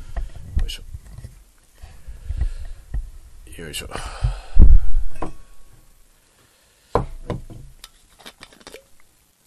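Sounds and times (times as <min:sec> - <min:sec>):
microphone handling thumps and clunks: 0:00.0 - 0:03.3, 0:04.1 - 0:05.9
speech: 0:03.6 - 0:04.4.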